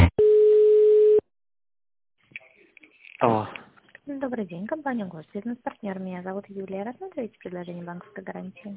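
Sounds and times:
buzzing telephone tone during call transfer: 0:00.2 - 0:01.2
speech: 0:04.2 - 0:08.7.

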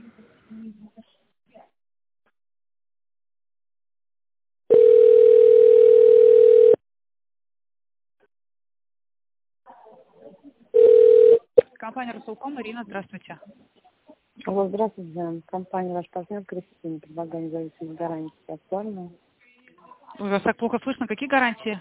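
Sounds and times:
telephone ringback tone while a call to a company is transferred to a secretary: 0:04.7 - 0:06.8, 0:10.8 - 0:11.5
speech: 0:12.0 - 0:19.3, 0:20.1 - 0:21.7.

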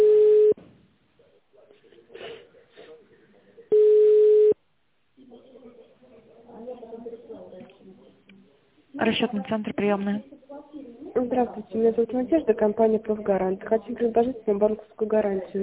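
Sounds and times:
telephone ringing tone while calling the operator: 0:00.0 - 0:00.6, 0:03.7 - 0:04.6
speech: 0:09.1 - 0:10.4, 0:11.2 - 0:15.6.

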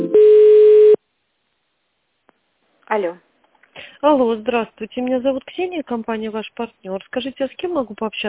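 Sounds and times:
telephone line beeps stepping upward in pitch while a call is put through: 0:00.1 - 0:01.0
speech: 0:02.9 - 0:03.3, 0:04.1 - 0:08.2.

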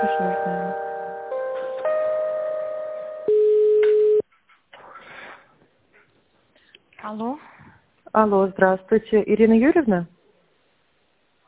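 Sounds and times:
telephone line tones while a call is transferred: 0:00.0 - 0:04.2
speech: 0:07.1 - 0:07.5, 0:08.2 - 0:10.2.

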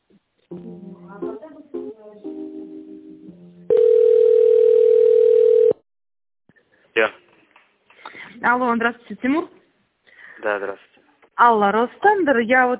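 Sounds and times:
speech: 0:00.2 - 0:02.9, 0:07.0 - 0:07.2, 0:08.4 - 0:09.6, 0:10.4 - 0:12.7
steady single-pitched telephone tone as a call is transferred: 0:03.7 - 0:05.8.

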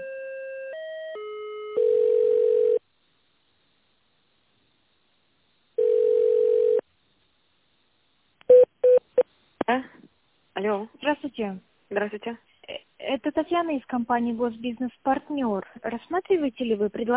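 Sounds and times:
long steady telephone beep during a call transfer: 0:01.0 - 0:02.8, 0:05.8 - 0:06.8, 0:08.5 - 0:09.2
speech: 0:10.6 - 0:12.5, 0:13.1 - 0:17.1.

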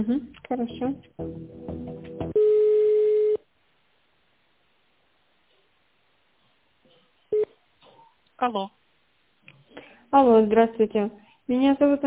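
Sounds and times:
speech: 0:00.0 - 0:01.9, 0:08.4 - 0:08.8, 0:10.1 - 0:12.0
telephone line tone while a call is being transferred: 0:02.4 - 0:03.4.

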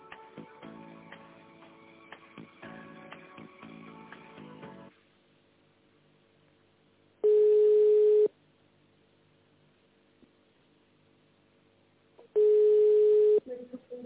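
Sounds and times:
telephone busy signal beeps on a call that does not go through: 0:07.2 - 0:08.3, 0:12.4 - 0:13.4.

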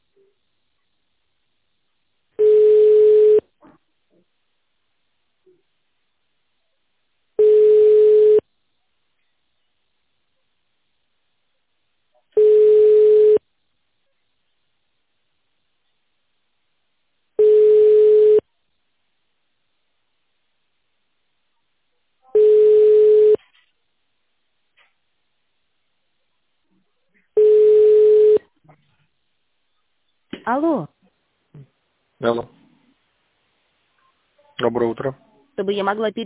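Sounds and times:
telephone ringback tone while a call connects: 0:02.4 - 0:03.4, 0:07.4 - 0:08.4, 0:12.4 - 0:13.4, 0:17.4 - 0:18.4, 0:22.4 - 0:23.4, 0:27.4 - 0:28.4
speech: 0:30.5 - 0:30.9, 0:31.6 - 0:32.6, 0:34.6 - 0:36.2.

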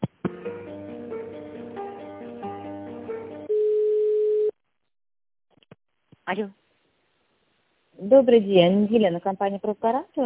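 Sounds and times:
loud continuous telephone line tone: 0:03.5 - 0:04.6
speech: 0:06.3 - 0:06.6, 0:08.1 - 0:10.2.

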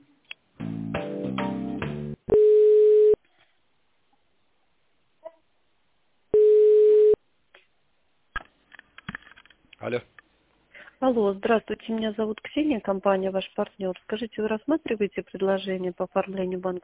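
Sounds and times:
telephone line tones while a business call is transferred: 0:02.3 - 0:03.2, 0:06.4 - 0:07.2
speech: 0:09.9 - 0:10.1, 0:11.0 - 0:16.8.

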